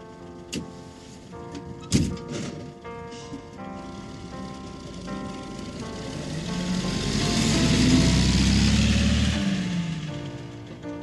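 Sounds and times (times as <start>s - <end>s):
broadband road noise: 3.8s - 11.0s
tour bus engine droning as it drives past: 3.8s - 11.0s.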